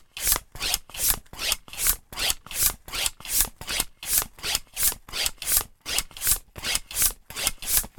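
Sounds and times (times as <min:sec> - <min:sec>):
bicycle hand pump operating at slow speed: 0:00.2 - 0:07.9.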